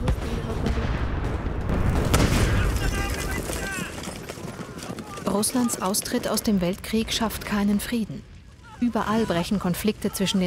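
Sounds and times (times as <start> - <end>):
gunshots: 0.0 - 5.8
speech: 5.4 - 10.4.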